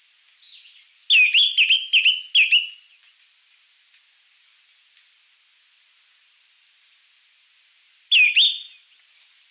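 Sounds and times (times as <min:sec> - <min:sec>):
faint hiss: 0:00.0 - 0:09.5
Greenish Schiffornis Schiffornis virescens singing whistled slurred notes: 0:01.1 - 0:02.8, 0:08.1 - 0:08.8.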